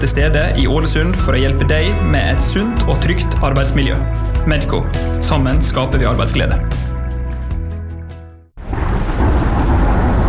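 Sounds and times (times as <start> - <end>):
speech: 0.0 - 6.9
short musical passage: 0.0 - 8.5
deep rolling thunder: 8.6 - 10.2
heavy rain: 8.6 - 10.2.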